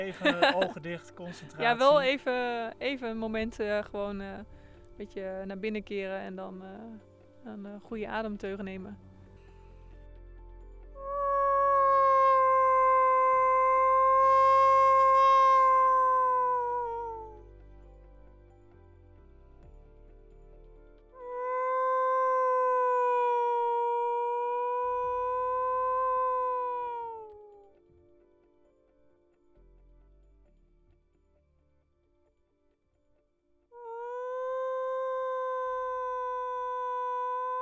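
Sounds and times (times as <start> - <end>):
person imitating a wolf howl toward wolves: 0.0 - 2.1, 11.0 - 17.4, 21.2 - 27.7, 33.8 - 37.5
laughter: 0.0 - 4.4
speech: 0.0 - 9.1.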